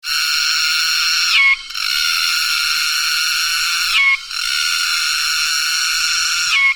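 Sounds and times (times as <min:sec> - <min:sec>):
Dundubia vaginata cicada calling: 0:00.0 - 0:06.7.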